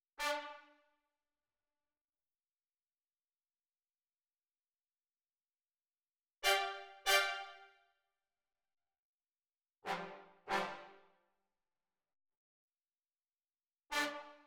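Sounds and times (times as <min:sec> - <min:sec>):
brass instruments: 0:00.2 - 0:00.8, 0:06.4 - 0:07.7, 0:09.9 - 0:11.0, 0:13.9 - 0:14.4.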